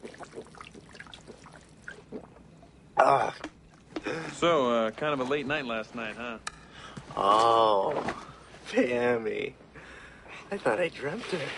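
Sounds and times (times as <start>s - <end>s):
water trickling and pouring with soft liquid gurgles: 0.0s - 2.6s
splashing gulp of water being swallowed: 0.0s - 4.1s
speech: 3.0s - 3.5s, 4.1s - 6.5s, 7.2s - 9.6s, 10.5s - 11.5s.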